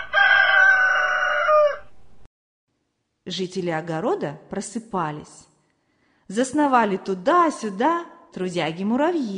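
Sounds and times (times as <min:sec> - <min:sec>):
rooster crowing hoarsely: 0:00.0 - 0:02.0
speech: 0:03.3 - 0:05.5, 0:06.3 - 0:09.3.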